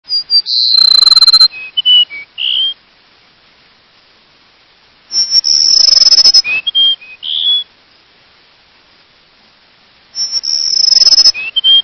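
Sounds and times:
Cassin's sparrow singing: 0:00.1 - 0:02.8, 0:05.1 - 0:07.7, 0:10.2 - 0:11.8.

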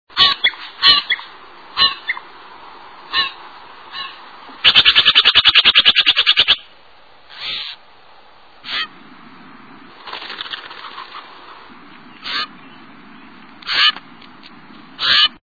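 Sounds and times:
Steller's jay calling: 0:00.1 - 0:02.2, 0:03.1 - 0:06.7, 0:07.3 - 0:07.8, 0:08.6 - 0:09.0, 0:10.8 - 0:12.8, 0:13.6 - 0:14.0, 0:15.0 - 0:15.4.

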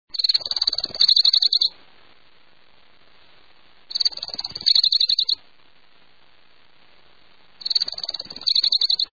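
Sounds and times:
Orange-crowned warbler calling: 0:00.1 - 0:01.8, 0:03.9 - 0:05.4, 0:07.6 - 0:09.1.

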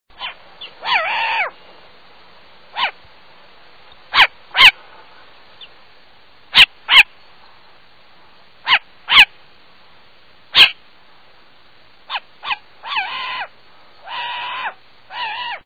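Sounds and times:
short-eared owl calling: 0:00.2 - 0:01.6, 0:02.7 - 0:03.0, 0:03.9 - 0:05.8, 0:06.5 - 0:07.1, 0:08.6 - 0:09.3, 0:10.5 - 0:10.8, 0:12.1 - 0:15.6.

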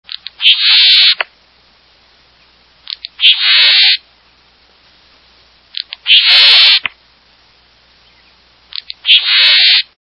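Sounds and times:
Le Contes Sparrow: 0:02.4 - 0:04.4, 0:05.8 - 0:06.9, 0:08.0 - 0:09.9.

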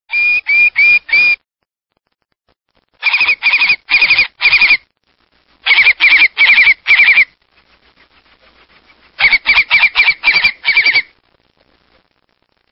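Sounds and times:
long-billed curlew calling: 0:00.1 - 0:01.4, 0:03.0 - 0:04.8, 0:05.6 - 0:07.4, 0:08.7 - 0:11.1.

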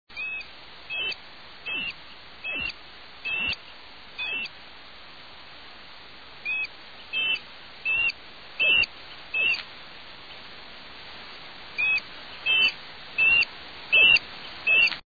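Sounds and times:
Sharp shinned Hawk: 0:00.2 - 0:03.6, 0:04.2 - 0:04.5, 0:06.4 - 0:09.6, 0:11.8 - 0:15.0.

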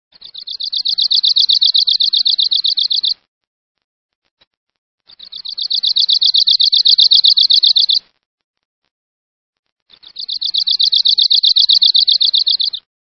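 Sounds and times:
Arctic Warbler calling: 0:00.1 - 0:03.2, 0:05.1 - 0:08.0, 0:09.9 - 0:12.9.

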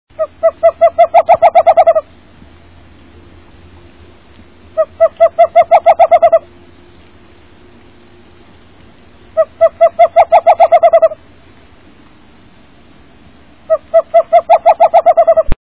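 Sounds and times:
Western screech owl: 0:00.2 - 0:02.2, 0:04.6 - 0:06.7, 0:09.2 - 0:11.4, 0:13.6 - 0:15.6.

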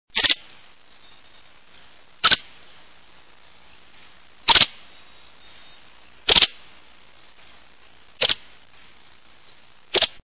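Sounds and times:
white-headed woodpecker: 0:00.2 - 0:01.4, 0:02.2 - 0:02.9, 0:04.4 - 0:06.6, 0:08.2 - 0:08.4.

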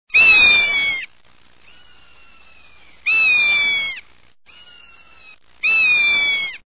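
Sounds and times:
Rough-legged Hawk calling: 0:00.1 - 0:06.6.

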